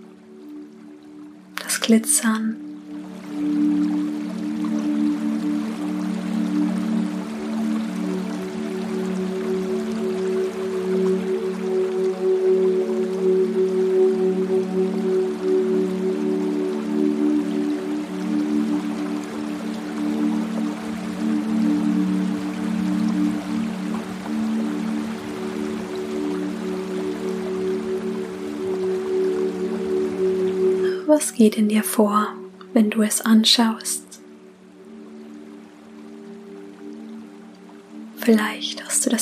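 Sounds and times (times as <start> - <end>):
flowing river water: 0.0 - 39.2
speech: 1.8 - 2.6, 31.2 - 34.0, 38.3 - 39.2.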